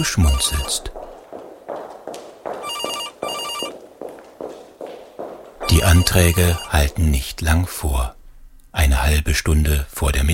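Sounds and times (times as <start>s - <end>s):
telephone bell ringing: 0.0s - 0.8s, 2.6s - 3.8s, 5.6s - 6.9s
speech: 0.0s - 1.0s, 5.8s - 8.2s, 8.8s - 10.3s
brisk footsteps clicking along the floor: 0.0s - 7.4s.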